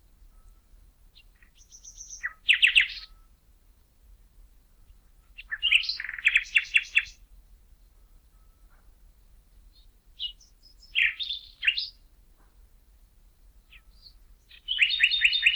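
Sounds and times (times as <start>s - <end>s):
common nightingale Luscinia megarhynchos singing: 1.2s - 3.3s, 5.3s - 7.2s, 9.6s - 12.0s, 13.6s - 15.5s.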